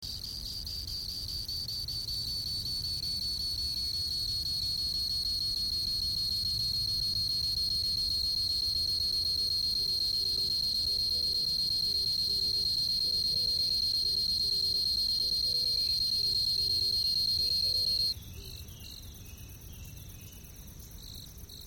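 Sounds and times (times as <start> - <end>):
kumasuzumushi cricket chirping: 0.0 - 21.6.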